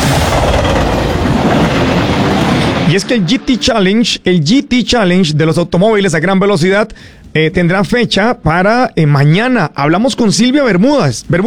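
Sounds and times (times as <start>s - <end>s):
train sound effect rumbling roar: 0.0s - 3.8s
speech: 2.9s - 11.4s.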